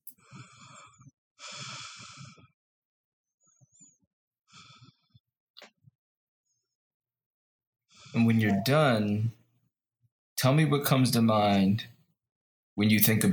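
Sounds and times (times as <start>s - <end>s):
deep slow breaths with eyes closed: 0.1s - 2.6s, 3.4s - 5.2s
speech: 8.1s - 9.4s, 10.4s - 11.9s, 12.8s - 13.3s.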